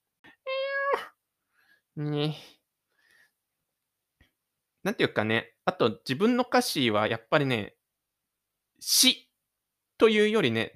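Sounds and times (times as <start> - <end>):
cat meowing: 0.5 - 1.1
speech: 2.0 - 2.6, 4.8 - 7.8, 8.8 - 9.2, 10.0 - 10.7.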